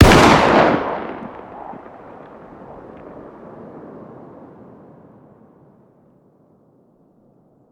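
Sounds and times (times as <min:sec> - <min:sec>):
distant fire: 0:00.0 - 0:06.2.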